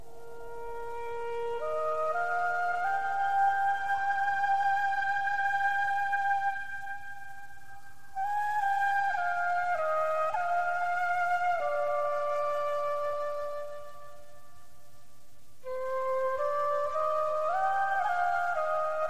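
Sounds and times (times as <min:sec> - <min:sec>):
deep flute solo: 0:00.0 - 0:14.7, 0:15.6 - 0:19.0.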